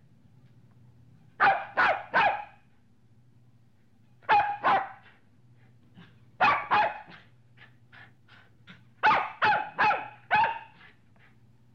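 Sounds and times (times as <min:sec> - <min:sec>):
faint low hum: 0:00.0 - 0:11.7
medium-sized dog barking: 0:01.4 - 0:02.6, 0:04.3 - 0:05.1, 0:06.4 - 0:07.3, 0:09.0 - 0:10.8.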